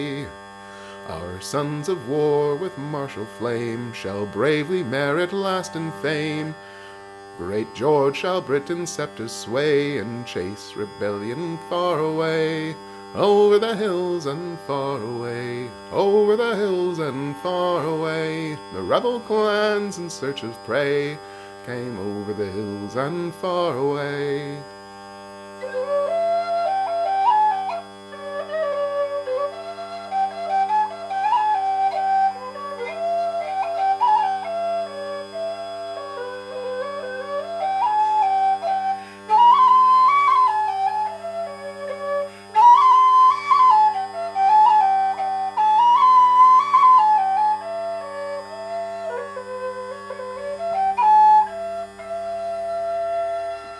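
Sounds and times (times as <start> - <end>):
speech: 0.0 - 0.4, 1.1 - 6.7, 7.4 - 24.8
lilting melody played on tin whistle: 1.1 - 53.7.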